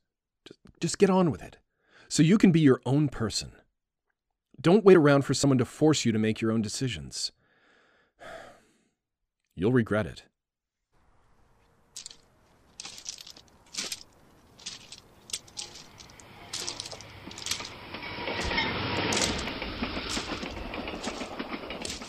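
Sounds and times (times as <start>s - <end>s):
speech: 0.5s - 3.6s, 4.6s - 7.4s, 9.6s - 10.3s
train passing on railway tracks: 12.8s - 22.0s.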